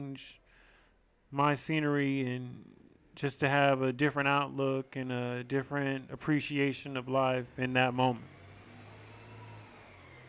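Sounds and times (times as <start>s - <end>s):
speech: 0.0s - 0.4s, 1.3s - 8.4s
big truck driving past: 2.7s - 10.2s.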